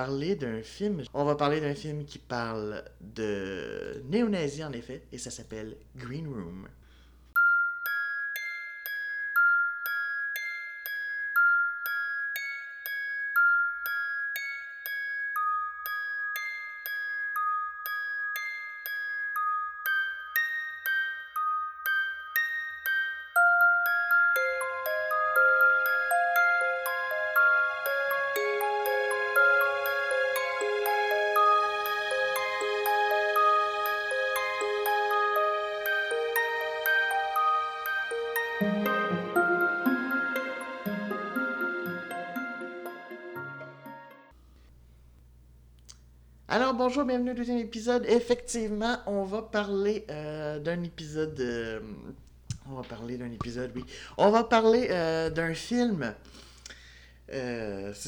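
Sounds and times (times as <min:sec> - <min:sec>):
speech: 0:00.0 - 0:06.8, 0:47.0 - 0:56.5, 0:57.3 - 0:58.0
bright bell-like instrumental music with plucked or struck tones: 0:07.4 - 0:44.4.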